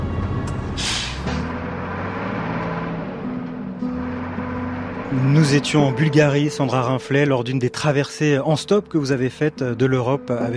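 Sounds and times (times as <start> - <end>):
heavy truck engine idling in Bulgaria: 0.0 - 10.2
heavy truck air brake hissing: 0.8 - 1.4
speech: 5.1 - 10.5.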